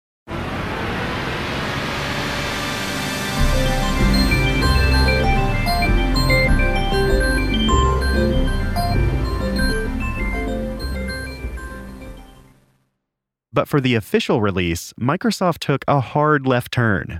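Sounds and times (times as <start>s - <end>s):
long electronic computer startup sound with layered synthesized tones: 0.3s - 12.8s
speech: 13.6s - 17.1s.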